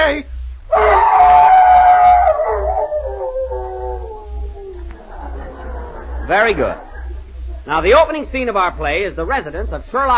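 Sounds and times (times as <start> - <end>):
faint low hum: 0.0 - 10.1
man imitating a hound's howl: 0.7 - 4.8
laughter: 4.8 - 7.7
speech: 6.4 - 6.8, 7.7 - 10.1.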